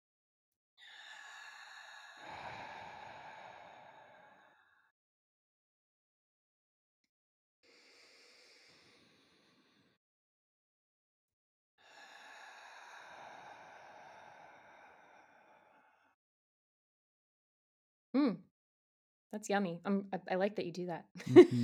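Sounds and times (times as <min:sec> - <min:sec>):
slow deep belly breaths during a breathing exercise: 0:00.8 - 0:04.9, 0:07.7 - 0:10.0, 0:11.8 - 0:16.2
speech: 0:18.2 - 0:18.4, 0:19.3 - 0:21.6
laughter: 0:21.2 - 0:21.6.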